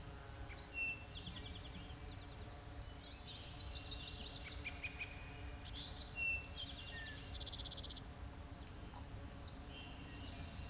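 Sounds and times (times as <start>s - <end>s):
golden-winged warbler singing buzzy notes: 0.0s - 10.6s
thin whistle: 5.7s - 7.4s.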